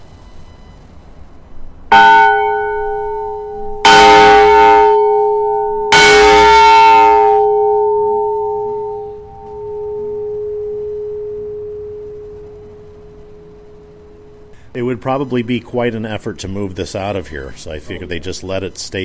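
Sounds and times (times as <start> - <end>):
large heavy former fire emergency warning bell struck: 1.9 - 15.6
speech: 15.0 - 19.0.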